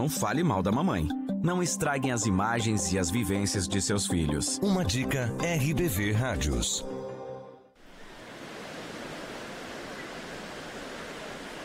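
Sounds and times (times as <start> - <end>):
speech: 0.0 - 7.1
sea waves washing in: 7.8 - 11.6.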